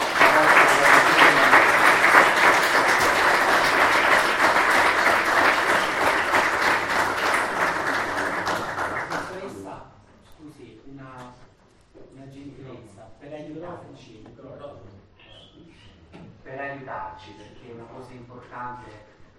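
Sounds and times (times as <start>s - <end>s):
crowd clapping at the end of a church Mass: 0.0s - 9.6s.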